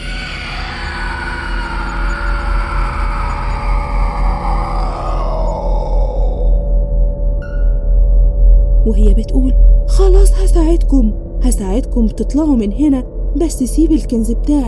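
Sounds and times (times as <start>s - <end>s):
loud frightening scream sliding into a drawn-out wail: 0.0s - 6.7s
heavy low rumble: 0.0s - 14.6s
speech: 8.9s - 14.6s.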